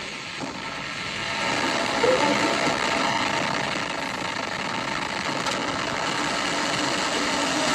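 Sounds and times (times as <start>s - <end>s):
Ariane 5 rocket engines igniting and lifting off: 0.0s - 7.7s.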